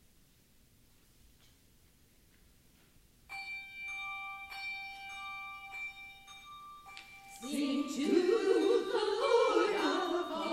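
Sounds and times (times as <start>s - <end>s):
bell tolling a simple ostinato pattern: 3.3s - 10.5s.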